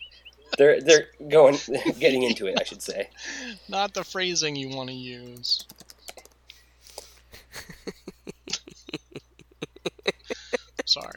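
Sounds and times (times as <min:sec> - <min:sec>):
speech: 0:00.6 - 0:05.8, 0:11.0 - 0:11.1
laughter: 0:01.4 - 0:03.7, 0:07.0 - 0:11.1
typing on a computer keyboard: 0:05.2 - 0:06.4.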